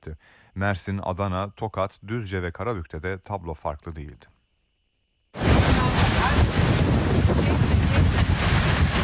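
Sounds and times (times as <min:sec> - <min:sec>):
speech: 0:00.0 - 0:04.4
storm wind roaring during a violent storm and tornado: 0:05.4 - 0:09.0.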